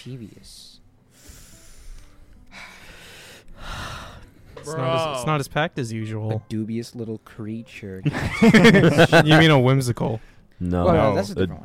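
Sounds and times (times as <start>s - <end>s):
speech: 0.0s - 0.8s, 4.6s - 11.6s
heavy breathing into a microphone: 1.1s - 4.6s
laughter: 8.0s - 9.6s.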